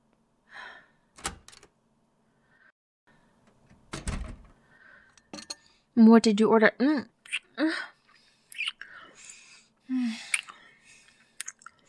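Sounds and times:
door handled to receive a food delivery with clunks and rattles: 0:01.2 - 0:01.7, 0:03.7 - 0:04.6
speech: 0:06.0 - 0:07.9.

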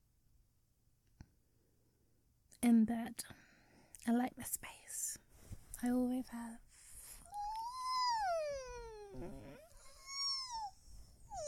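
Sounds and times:
speech: 0:02.6 - 0:03.4, 0:04.0 - 0:05.2, 0:05.8 - 0:06.6, 0:09.1 - 0:09.6
long voiced human yawn: 0:07.3 - 0:10.6.

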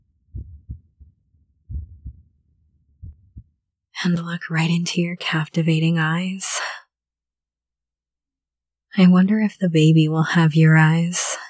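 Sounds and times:
heartbeat in lub-dub pairs: 0:00.0 - 0:03.6
speech: 0:04.0 - 0:06.7, 0:09.0 - 0:11.4.

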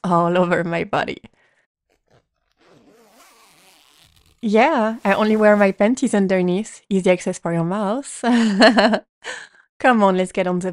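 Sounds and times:
speech: 0:00.0 - 0:01.3, 0:04.4 - 0:10.7
zipper being pulled down on clothing: 0:01.8 - 0:06.1.

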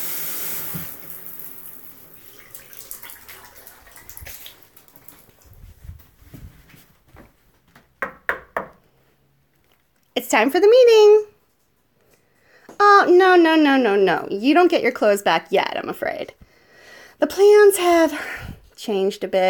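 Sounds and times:
shower water running as someone rinses off: 0:00.0 - 0:06.4
sharp knocks: 0:08.0 - 0:08.8
speech: 0:10.3 - 0:11.3, 0:13.0 - 0:16.4, 0:17.2 - 0:19.4.

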